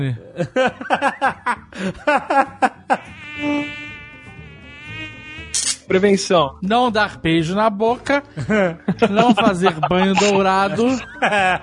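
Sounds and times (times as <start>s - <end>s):
speech: 0.0s - 2.7s, 5.6s - 11.6s
laughter: 0.3s - 3.1s, 8.4s - 11.6s
thin whining mosquito buzz: 2.8s - 5.9s.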